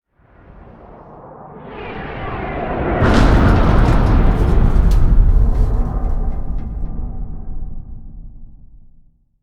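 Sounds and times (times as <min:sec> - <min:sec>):
cinematic intro impact: 0:02.6 - 0:09.3.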